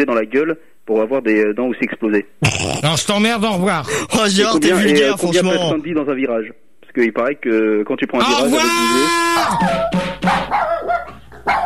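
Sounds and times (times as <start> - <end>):
speech: 0.0 - 11.0
dog barking: 10.2 - 11.6.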